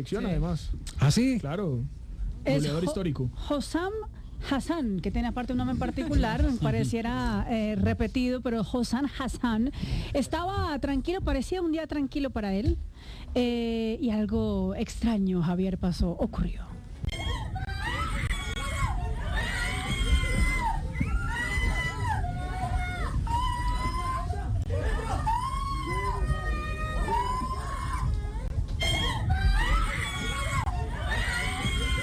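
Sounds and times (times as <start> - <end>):
speech: 0.0 - 16.7
loud dense crowd-like commotion: 17.0 - 32.0
several women screaming and shrieking in alarm: 17.1 - 32.0.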